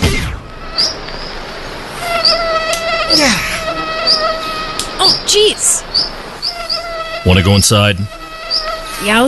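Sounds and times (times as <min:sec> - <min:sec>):
mosquitoes buzzing: 0:00.4 - 0:09.2
speech: 0:07.2 - 0:08.2, 0:09.0 - 0:09.2.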